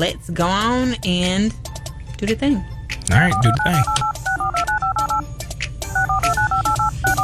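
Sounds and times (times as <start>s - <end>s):
speech: 0.0s - 4.2s
telephone touch tones being dialed: 3.1s - 5.2s, 6.0s - 7.2s.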